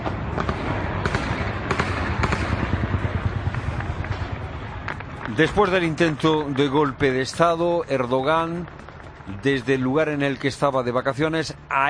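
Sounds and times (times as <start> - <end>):
gunfire during nighttime armed clashes of rebel soldiers in Turkey: 0.0 - 6.2
speech: 5.4 - 11.8.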